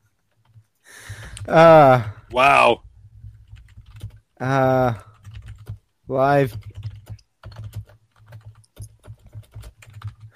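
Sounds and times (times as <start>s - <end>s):
speech: 1.5s - 2.9s, 4.4s - 5.1s, 6.1s - 6.7s
typing on a computer keyboard: 3.2s - 10.3s.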